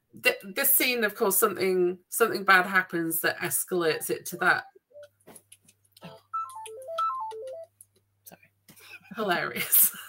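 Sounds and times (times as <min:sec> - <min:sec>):
speech: 0:00.2 - 0:04.7, 0:09.2 - 0:10.0
mobile phone ringtone with a bright melodic phrase: 0:06.3 - 0:07.7.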